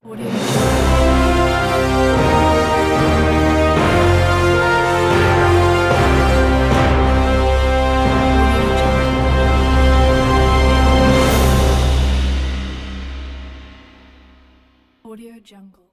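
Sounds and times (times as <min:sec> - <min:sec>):
epic cinematic orchestral intro ident: 0:00.1 - 0:14.8.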